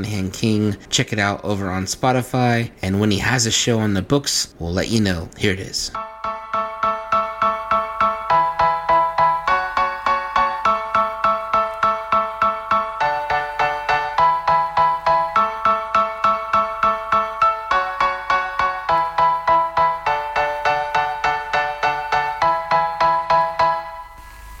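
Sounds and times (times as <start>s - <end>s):
speech: 0.0s - 6.1s
bright plucky keyboard-like notes in a music single: 6.0s - 24.0s.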